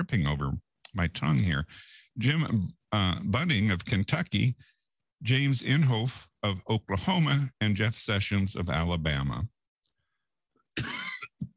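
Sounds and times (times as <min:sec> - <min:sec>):
speech: 0:00.0 - 0:09.6, 0:10.8 - 0:11.0
loud harsh cough: 0:10.8 - 0:11.5.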